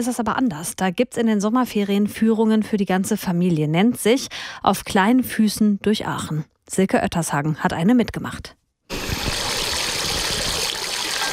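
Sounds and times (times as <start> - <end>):
speech: 0.0 - 8.6
small ground-level water fountains spraying and splashing: 8.9 - 11.3.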